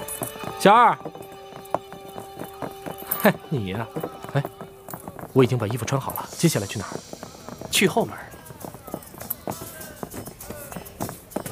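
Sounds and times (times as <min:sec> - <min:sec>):
hooves clip-clopping from a horse-drawn carriage: 0:00.0 - 0:11.5
speech: 0:00.6 - 0:01.2, 0:03.2 - 0:04.6, 0:05.3 - 0:08.2.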